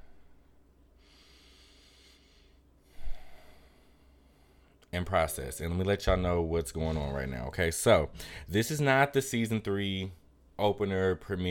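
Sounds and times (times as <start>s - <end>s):
person taking a deep breath: 0.0s - 4.8s, 8.1s - 8.5s
speech: 4.9s - 11.4s.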